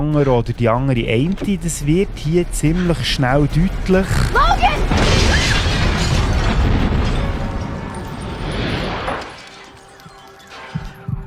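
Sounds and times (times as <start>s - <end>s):
speech: 0.0s - 5.2s
bomb blast in a drama scene: 3.7s - 9.2s.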